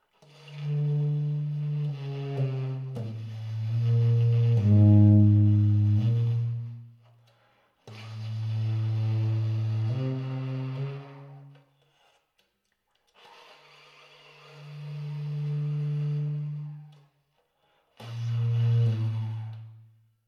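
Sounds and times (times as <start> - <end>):
tenor saxophone subtone playing pianissimo in low register: 0.3 - 7.0, 7.9 - 11.6, 13.4 - 17.0, 18.0 - 19.8.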